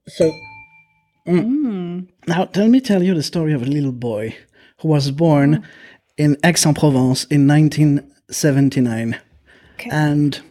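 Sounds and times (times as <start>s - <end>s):
glasses clinking during a toast: 0.0s - 1.3s
speech: 0.2s - 0.5s, 1.2s - 9.2s, 9.8s - 10.4s.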